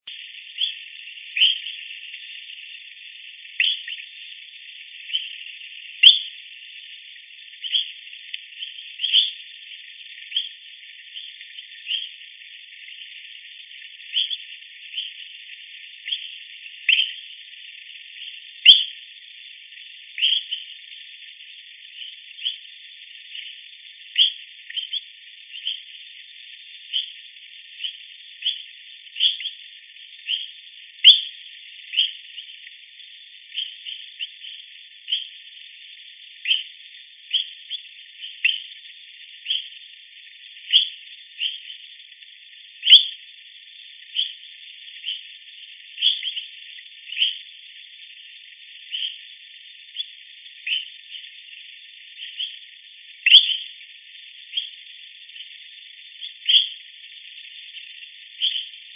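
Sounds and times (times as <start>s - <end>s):
Eleutherodactylus pipilans calling: 0.0s - 58.9s.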